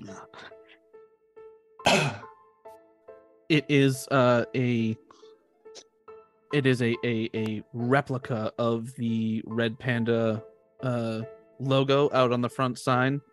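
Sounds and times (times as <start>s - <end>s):
throat clearing: 1.8s - 2.3s
several people coughing harshly: 1.9s - 2.2s
speech: 3.5s - 5.1s, 6.5s - 13.3s.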